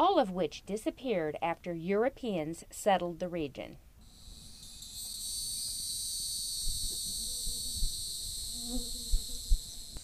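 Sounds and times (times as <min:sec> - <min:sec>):
speech: 0:00.2 - 0:03.8, 0:08.7 - 0:09.0
chorus of cicadas buzzing in woodland: 0:04.0 - 0:10.0.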